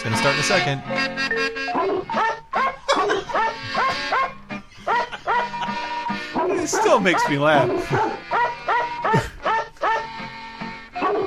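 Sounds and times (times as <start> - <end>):
speech: 0.0 - 2.3, 6.6 - 8.2
steady musical backing on a novelty record: 0.0 - 11.2
edited dog barks spliced at varying pitches forming a melody: 1.7 - 4.4, 6.4 - 10.2, 11.0 - 11.2
laughter: 1.8 - 10.2.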